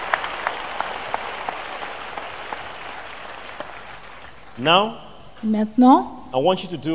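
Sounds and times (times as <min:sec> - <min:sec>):
crowd clapping: 0:00.0 - 0:04.9
speech: 0:04.6 - 0:06.9.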